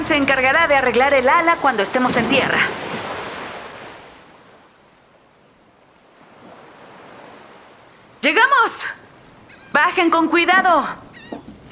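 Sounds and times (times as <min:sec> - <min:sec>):
sea waves washing onto a beach shore: 0:00.0 - 0:11.7
speech: 0:00.1 - 0:02.8, 0:08.2 - 0:09.0, 0:09.8 - 0:11.0.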